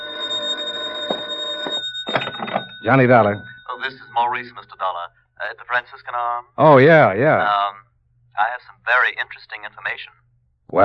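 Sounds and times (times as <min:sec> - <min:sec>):
telephone bell ringing: 0:00.0 - 0:04.8
speech: 0:02.8 - 0:10.8.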